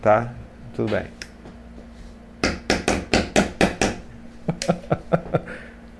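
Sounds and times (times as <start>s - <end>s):
speech: 0.0s - 1.2s
hammer banging during construction repairs: 2.4s - 4.0s
laughter: 4.4s - 5.7s.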